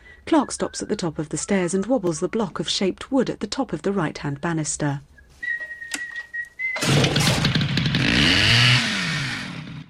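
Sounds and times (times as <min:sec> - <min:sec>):
speech: 0:00.3 - 0:05.1
chainsaw starting and cutting wood: 0:06.8 - 0:09.8.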